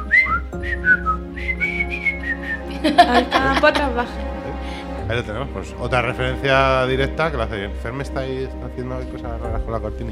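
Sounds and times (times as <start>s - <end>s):
person in a jail whistling a bouncy melody: 0.0s - 2.7s
speech: 0.6s - 1.7s, 2.8s - 4.4s, 5.1s - 10.1s
laughter: 2.6s - 4.9s.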